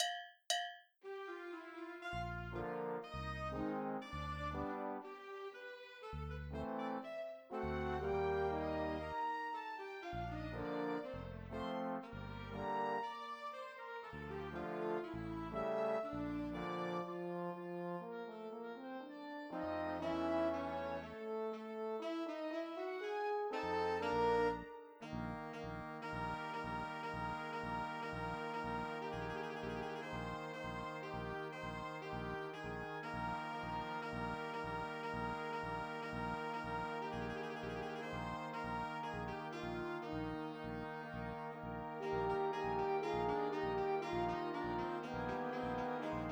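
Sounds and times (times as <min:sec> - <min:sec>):
classical music without clarinet: 0:01.2 - 0:46.3.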